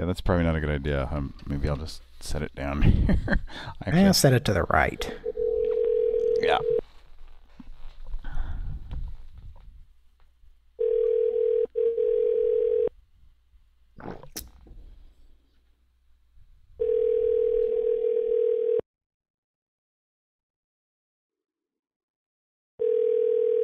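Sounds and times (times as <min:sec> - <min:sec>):
speech: 0:00.0 - 0:05.2
telephone ringback tones on an outgoing call: 0:05.2 - 0:06.8, 0:10.8 - 0:12.9, 0:16.8 - 0:18.8, 0:22.8 - 0:23.6.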